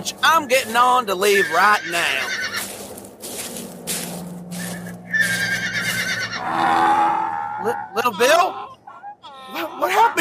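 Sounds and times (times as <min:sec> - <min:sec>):
speech: 0:00.0 - 0:02.5, 0:06.5 - 0:08.6, 0:09.5 - 0:10.1
horse whinnying: 0:01.3 - 0:02.6, 0:05.1 - 0:08.8.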